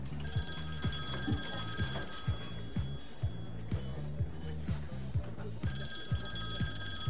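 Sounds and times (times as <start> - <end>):
telephones ringing in bright high electronic trills: 0.1 - 7.0.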